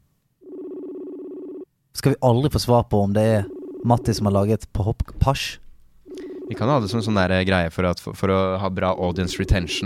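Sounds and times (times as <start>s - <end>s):
ringback tone on an outgoing phone call: 0.4s - 1.7s, 3.5s - 4.2s, 6.1s - 6.8s, 9.3s - 9.8s
speech: 2.0s - 5.6s, 6.5s - 9.8s.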